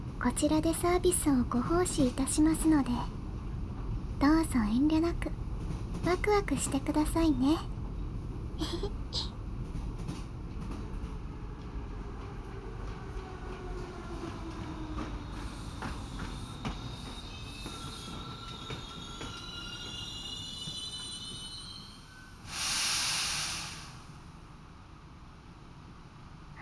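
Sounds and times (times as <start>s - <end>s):
steady low rumble of an arriving train: 0.0s - 26.5s
speech: 0.2s - 3.2s, 4.2s - 5.3s, 6.0s - 7.7s, 8.6s - 9.3s
braking train wheels squealing: 12.3s - 24.3s
train air-brake hiss: 22.4s - 24.4s.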